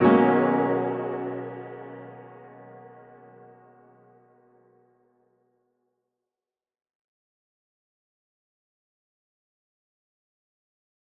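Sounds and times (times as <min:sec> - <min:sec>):
grand piano ballad in B major: 0:00.0 - 0:04.1.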